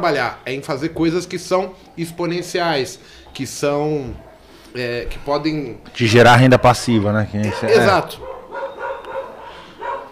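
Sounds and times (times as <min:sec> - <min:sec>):
speech: 0:00.0 - 0:08.3
several dogs barking with yelps and woofs: 0:04.0 - 0:04.8, 0:07.3 - 0:10.1.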